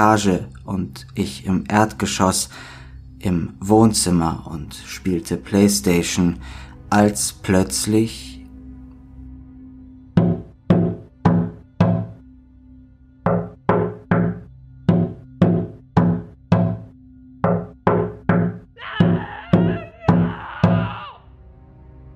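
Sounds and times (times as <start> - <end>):
speech: 0.0 - 8.3
loud knocking on a patio door: 10.2 - 12.2, 13.3 - 20.9.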